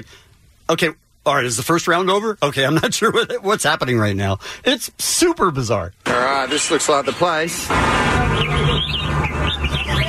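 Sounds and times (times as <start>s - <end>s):
speech: 0.0s - 10.0s
caged songbirds singing at a bird-singing competition: 6.3s - 10.0s.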